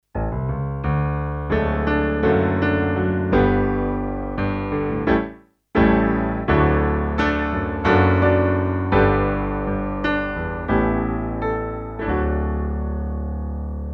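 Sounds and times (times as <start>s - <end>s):
Alesis Prestige Artist grand piano: 0.1s - 13.9s.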